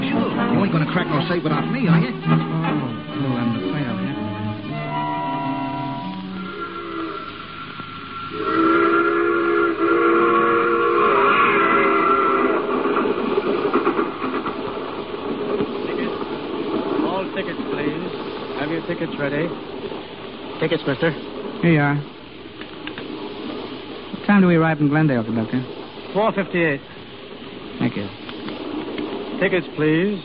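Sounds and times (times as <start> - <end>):
moving steam train rumbling along: 0.0 - 30.2
speech: 0.8 - 3.7, 20.6 - 22.2, 24.3 - 27.0, 27.8 - 28.2, 29.4 - 30.2
steam train whistle blasts: 2.4 - 12.7.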